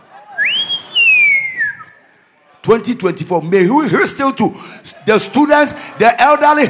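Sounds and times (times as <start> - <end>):
single clear whistle gliding up and down: 0.3 - 2.2
speech: 2.6 - 6.6.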